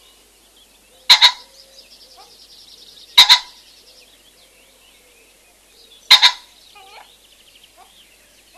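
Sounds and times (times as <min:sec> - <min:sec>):
common pheasant giving loud hoarse two-part crows: 0:00.9 - 0:08.5.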